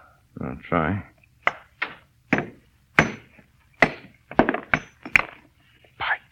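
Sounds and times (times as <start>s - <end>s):
speech: 0.4s - 1.1s
hammer striking and splitting a stone: 1.4s - 5.3s.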